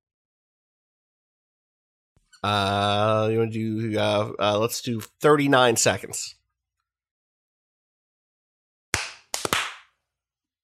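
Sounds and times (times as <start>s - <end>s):
speech: 2.4s - 6.4s
sharp loud hand claps for audio sync: 8.9s - 10.0s.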